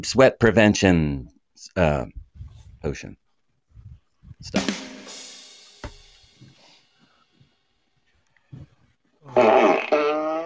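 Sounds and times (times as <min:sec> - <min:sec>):
speech: 0:00.0 - 0:02.2, 0:02.8 - 0:03.2, 0:04.4 - 0:04.8, 0:09.3 - 0:10.0
knock: 0:05.8 - 0:06.0
faint grunting: 0:08.5 - 0:10.4
loud buzzing drawn-out strained fart: 0:09.2 - 0:10.4.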